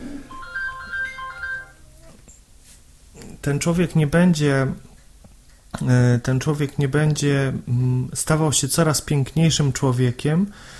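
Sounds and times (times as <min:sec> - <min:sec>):
mobile phone ringtone playing a stepped electronic melody: 0:00.3 - 0:02.0
speech: 0:03.4 - 0:04.9, 0:05.8 - 0:10.7.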